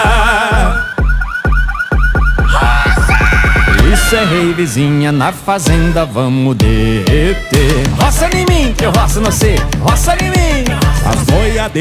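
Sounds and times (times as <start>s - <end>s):
pickup truck electronic car alarm warbling and chirping: 0.0s - 6.2s
steady heavy bass thump: 0.0s - 11.5s
speech: 4.3s - 11.7s.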